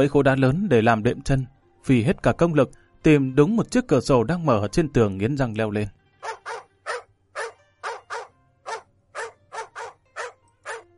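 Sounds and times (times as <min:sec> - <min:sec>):
speech: 0:00.0 - 0:06.4
dog barking loudly in a garden: 0:06.2 - 0:10.9.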